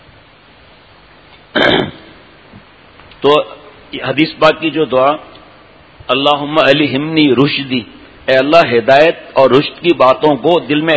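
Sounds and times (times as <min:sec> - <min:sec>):
single short harsh cough: 0:01.5 - 0:02.2
speech: 0:03.2 - 0:05.3, 0:06.1 - 0:10.9.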